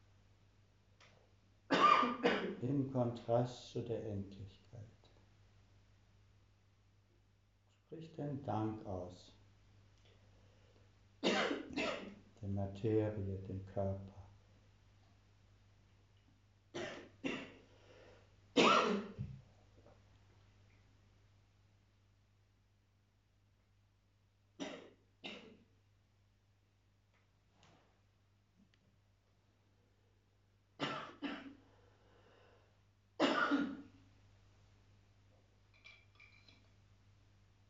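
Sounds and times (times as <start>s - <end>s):
person coughing: 1.7s - 2.6s, 11.2s - 12.2s, 18.6s - 19.3s, 30.8s - 31.6s, 33.2s - 33.9s
person clearing throat: 1.7s - 2.7s, 11.2s - 12.2s, 16.8s - 17.6s, 18.6s - 19.3s, 24.6s - 25.6s, 30.8s - 31.6s, 33.2s - 34.0s
speech: 2.0s - 4.9s, 7.9s - 9.4s, 12.4s - 14.2s.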